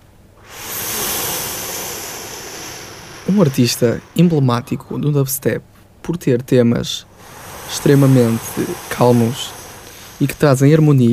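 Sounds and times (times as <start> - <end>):
ocean surf breaking waves: 0.4 - 5.2, 7.1 - 11.1
speech: 3.3 - 9.6, 10.2 - 11.1.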